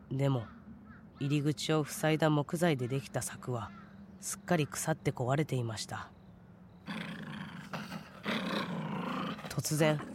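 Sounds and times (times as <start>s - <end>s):
speech: 0.1s - 0.6s, 1.2s - 6.2s, 9.6s - 10.1s
animal growling menacingly on a path by a forest: 6.9s - 10.1s.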